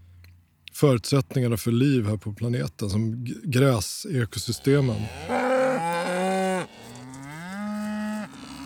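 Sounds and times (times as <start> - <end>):
speech: 0.8 - 5.4
cow mooing: 4.5 - 8.6.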